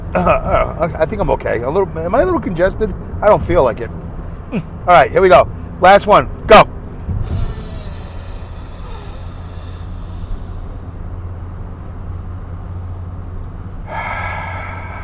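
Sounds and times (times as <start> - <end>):
speech: 0.1 - 7.4
deep breaths in through the nose and out through the mouth: 7.1 - 11.1, 13.8 - 15.0.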